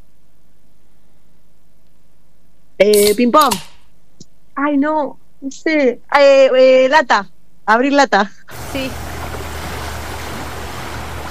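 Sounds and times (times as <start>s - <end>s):
speech: 2.8s - 3.7s, 4.6s - 9.1s
river water flowing: 8.5s - 11.2s.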